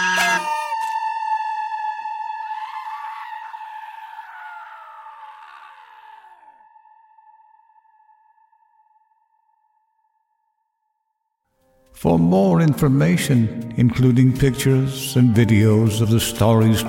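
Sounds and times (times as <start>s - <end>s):
eerie screaming: 0.0s - 9.8s
speech: 12.0s - 16.8s.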